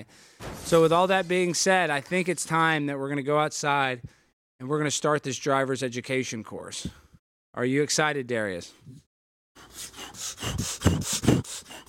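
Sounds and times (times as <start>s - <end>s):
heavy rapid rasping breathing into a microphone: 0.0s - 0.5s, 9.6s - 11.8s
speech: 0.0s - 7.0s, 7.6s - 9.0s.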